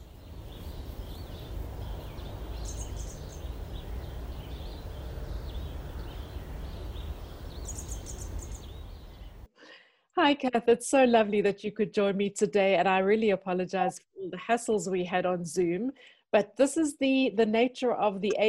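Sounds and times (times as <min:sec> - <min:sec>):
several birds singing and chirping outdoors: 0:00.0 - 0:09.5
speech: 0:10.2 - 0:18.4.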